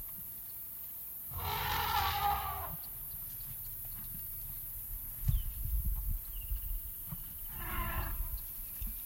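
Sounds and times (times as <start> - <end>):
African elephant trumpeting in Kruger: 1.3 - 3.0
steady low rumbling background: 1.3 - 8.8.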